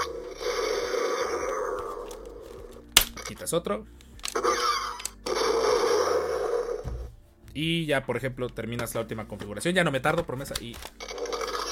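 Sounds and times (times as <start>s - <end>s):
toy blaster rifle electronic sound effect after removing magazine: 0.0s - 2.8s, 4.2s - 6.8s, 11.0s - 11.6s
sharp click: 2.9s - 3.3s
speech: 3.3s - 4.0s, 7.6s - 11.0s.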